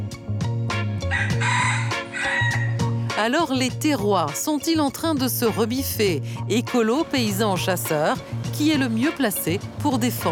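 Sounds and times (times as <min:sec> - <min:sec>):
rhythmic musical backing with regular beats and a low bass line: 0:00.0 - 0:10.3
rooster crowing: 0:01.1 - 0:02.8
speech: 0:03.2 - 0:10.3.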